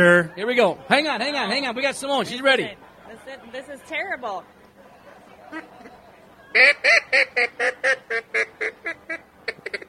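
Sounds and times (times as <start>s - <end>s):
speech: 0.0s - 4.6s, 5.5s - 9.8s
low-quality duck call blown in feeding-chatter rhythm: 6.5s - 9.8s.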